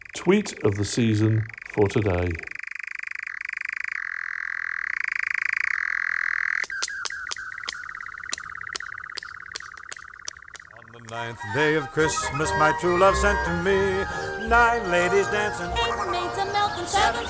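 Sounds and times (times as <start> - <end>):
courting nightjar churring trill at night around plantations: 0.0 - 17.2
speech: 0.2 - 2.5, 11.3 - 17.2
sharp evenly spaced clicks: 6.5 - 11.3.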